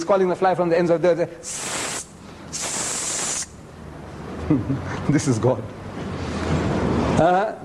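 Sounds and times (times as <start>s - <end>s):
speech: 0.0s - 1.7s, 4.5s - 5.8s, 6.5s - 7.6s
person imitating a snake's hiss: 1.5s - 3.6s.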